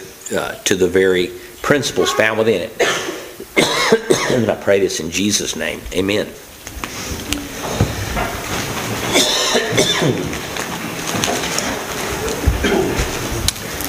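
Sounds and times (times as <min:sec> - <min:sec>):
steady hissing noise: 0:00.0 - 0:13.8
speech: 0:00.3 - 0:03.0, 0:03.6 - 0:06.8, 0:09.8 - 0:10.4
person coughing in a rough irregular fit: 0:02.0 - 0:04.5, 0:09.1 - 0:10.3.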